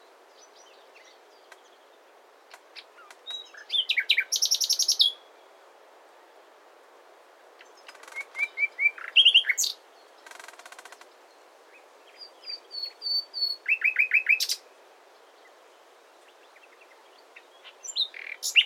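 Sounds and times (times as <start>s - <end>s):
common nightingale singing: 0.3s - 5.5s, 7.6s - 14.7s, 16.2s - 18.6s.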